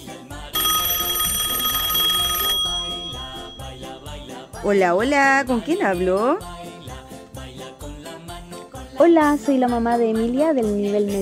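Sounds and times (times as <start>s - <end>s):
telephone ringing: 0.4s - 4.2s
speech: 4.6s - 6.5s, 9.0s - 11.2s.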